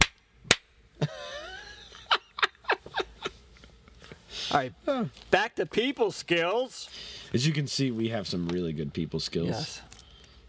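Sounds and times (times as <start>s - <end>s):
sharp slapping smacks: 0.0s - 0.7s
laughter: 1.0s - 3.5s
speech: 4.5s - 9.9s.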